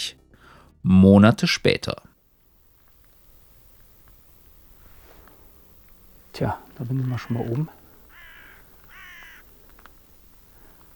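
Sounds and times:
speech: 0.8 - 2.0, 6.4 - 7.8
low wind in barren open countryside: 1.1 - 10.9
raven cawing over barren open countryside: 2.3 - 10.9.

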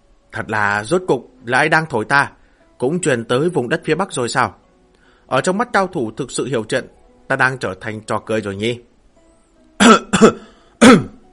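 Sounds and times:
speech: 0.3 - 4.6, 5.3 - 8.9, 9.8 - 11.1
dry cough: 9.8 - 11.2.

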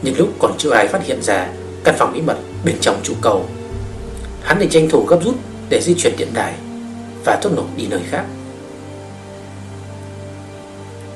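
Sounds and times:
speech: 0.0 - 3.6, 4.4 - 6.6, 7.2 - 8.4
steady rain pouring near a railway bridge over a river: 2.4 - 11.1.

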